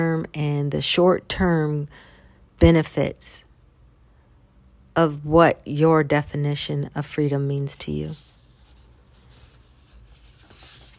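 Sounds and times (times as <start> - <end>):
speech: 0.2 - 3.5, 5.0 - 8.3
pages of a paper self-reflection journal turning: 8.1 - 10.9.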